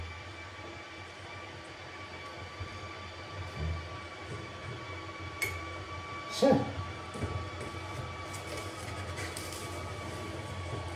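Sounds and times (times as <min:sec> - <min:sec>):
electric kettle heating water: 0:00.0 - 0:10.9
speech: 0:06.4 - 0:06.7.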